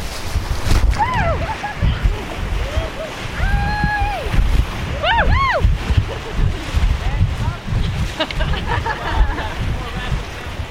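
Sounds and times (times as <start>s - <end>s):
whitewater roaring as a raft rushes through rapids: 0.0s - 10.6s
several excited voices whooping and shouting: 1.0s - 1.8s, 2.6s - 5.8s
laughter: 1.2s - 3.2s, 5.8s - 6.8s, 8.1s - 9.8s.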